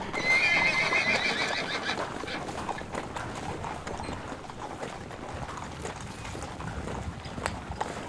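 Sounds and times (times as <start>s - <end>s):
horse whinnying: 0.0s - 5.0s
horse hooves pounding in a gallop: 0.0s - 8.0s
rough outdoor noise: 0.0s - 8.0s.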